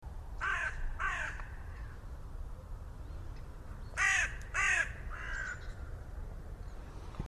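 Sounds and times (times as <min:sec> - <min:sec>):
low rumbling background noise: 0:00.0 - 0:07.2
carrion crow Corvus corone cawing: 0:00.4 - 0:02.0, 0:04.0 - 0:05.9.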